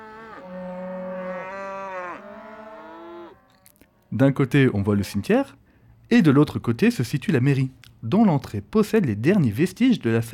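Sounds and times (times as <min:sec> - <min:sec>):
cows mooing in pastures surrounding a church site: 0:00.0 - 0:03.7
speech: 0:04.1 - 0:10.3.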